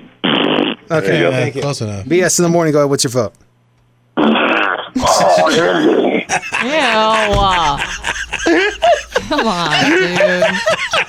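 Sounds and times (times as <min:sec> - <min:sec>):
voice making a buzzing raspberry fart imitation: 0:00.1 - 0:00.9, 0:04.2 - 0:06.3
speech: 0:00.9 - 0:03.4, 0:05.0 - 0:11.0
laughter: 0:05.0 - 0:11.0.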